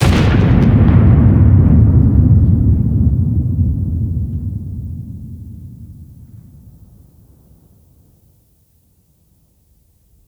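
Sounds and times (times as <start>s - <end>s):
explosion: 0.0s - 7.8s.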